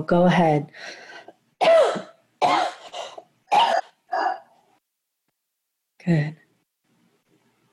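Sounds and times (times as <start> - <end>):
speech: 0.0 - 1.0, 6.0 - 6.4
harsh coughs: 1.6 - 4.5.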